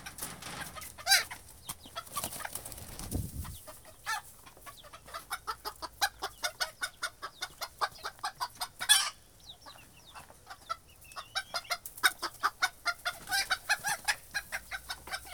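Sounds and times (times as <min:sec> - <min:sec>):
chickens clucking in a henhouse: 0:00.0 - 0:15.3
chicken squawk in a henhouse: 0:03.4 - 0:09.2, 0:11.4 - 0:15.3.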